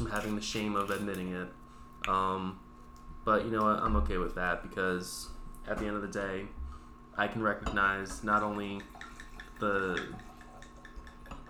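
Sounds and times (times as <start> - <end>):
speech: 0.1 - 2.6, 3.2 - 6.6, 7.2 - 9.0, 9.6 - 10.3
wine pouring into a glass: 8.2 - 11.4.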